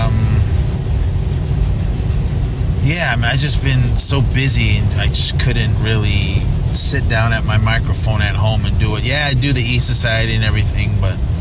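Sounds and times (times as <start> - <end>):
car driving along Interstate 5 in Northern California: 0.0 - 11.3
speech: 3.2 - 11.3.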